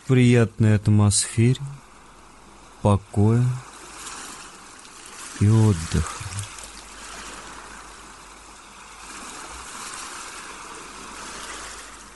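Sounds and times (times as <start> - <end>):
speech: 0.1 - 1.8, 2.8 - 3.7, 5.4 - 6.4
ocean surf washing ashore: 1.2 - 12.1.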